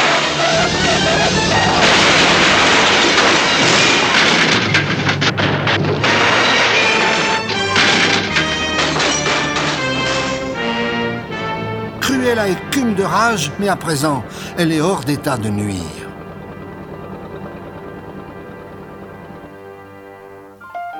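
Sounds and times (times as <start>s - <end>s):
van crashing into the bottom of a ravine: 0.0s - 12.4s
speech: 12.5s - 16.0s.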